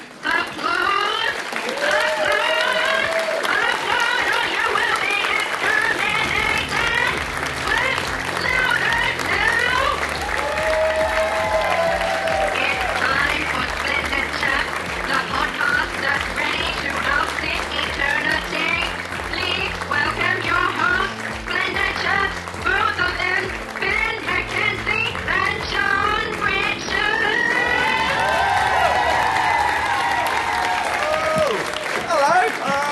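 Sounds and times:
crowd applauding: 0:00.0 - 0:32.9
low droning musical tones: 0:06.0 - 0:31.4.

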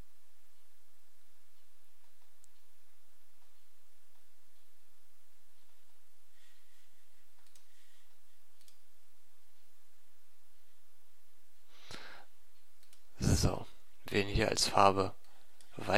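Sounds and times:
faint hiss: 0:00.0 - 0:15.9
computer mouse clicks: 0:01.5 - 0:02.7, 0:07.3 - 0:08.9, 0:12.5 - 0:13.1, 0:15.2 - 0:15.8
speech: 0:14.2 - 0:15.2, 0:15.8 - 0:15.9.

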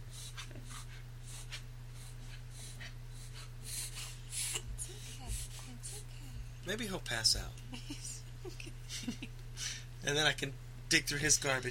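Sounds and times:
steady low electrical hum: 0:00.0 - 0:11.6
dog wheezing and snorting asthmatically underneath feet: 0:00.1 - 0:06.1
speech: 0:06.7 - 0:09.2, 0:10.1 - 0:11.6.

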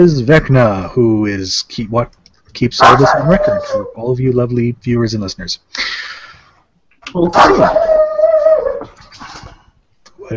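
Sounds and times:
speech: 0:00.0 - 0:06.2, 0:07.1 - 0:07.9
female dog howling: 0:02.8 - 0:04.0, 0:07.3 - 0:09.0.

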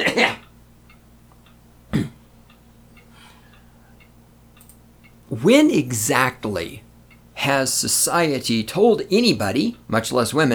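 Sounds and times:
throat clearing: 0:00.0 - 0:00.4, 0:01.9 - 0:02.2
speech: 0:05.3 - 0:10.5.

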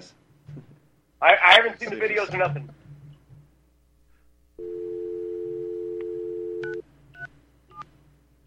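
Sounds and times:
speech: 0:01.2 - 0:02.8
telephone dial tone: 0:04.6 - 0:06.8.

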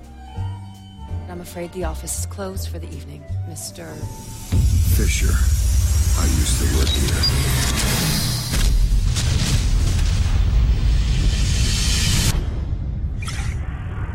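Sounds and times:
speech: 0:01.3 - 0:08.3
loud cinematic trailer explosions: 0:04.6 - 0:14.1.

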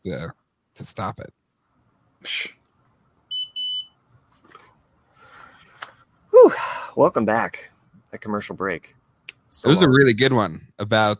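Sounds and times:
speech: 0:00.0 - 0:01.4, 0:02.2 - 0:02.6, 0:06.4 - 0:11.1
faint noise: 0:00.0 - 0:11.1
smoke detector chirping and beeping: 0:03.3 - 0:04.0.

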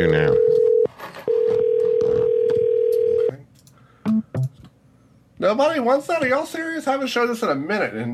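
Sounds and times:
incoming call ringing on a phone: 0:00.0 - 0:03.4
faint noise: 0:00.0 - 0:08.1
speech: 0:05.5 - 0:08.1.

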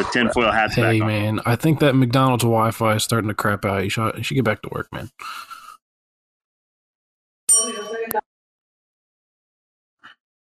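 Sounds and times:
speech: 0:00.0 - 0:05.5
laughter: 0:00.0 - 0:05.8
bell ding: 0:07.5 - 0:08.2.

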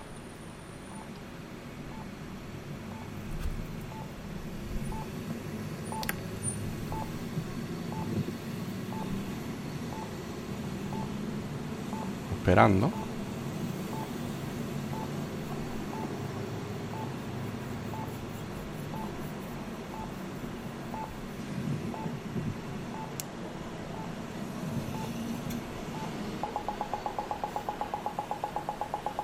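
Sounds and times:
low rumble of traffic on the parallel road: 0:00.0 - 0:29.2
accessible pedestrian crossing signal beeping: 0:00.8 - 0:01.2, 0:03.9 - 0:04.1, 0:04.8 - 0:05.1, 0:05.9 - 0:06.1, 0:06.9 - 0:07.2, 0:07.9 - 0:08.1, 0:08.9 - 0:09.2, 0:09.9 - 0:10.2, 0:10.9 - 0:11.2, 0:11.9 - 0:13.2, 0:14.9 - 0:16.2, 0:16.9 - 0:17.2, 0:17.9 - 0:18.2, 0:18.9 - 0:19.2, 0:20.9 - 0:21.2, 0:22.9 - 0:23.2, 0:25.8 - 0:29.2
speech: 0:12.5 - 0:13.0.

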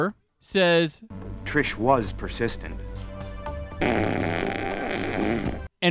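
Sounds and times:
speech: 0:00.0 - 0:02.9, 0:03.8 - 0:04.6, 0:05.4 - 0:05.8
fart sound effect: 0:03.8 - 0:05.7.

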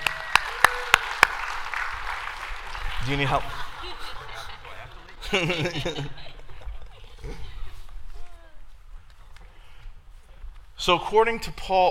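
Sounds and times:
small audience applauding: 0:00.0 - 0:06.0
laughter: 0:02.8 - 0:07.8
speech: 0:03.0 - 0:03.6, 0:05.3 - 0:06.4, 0:10.8 - 0:11.8.

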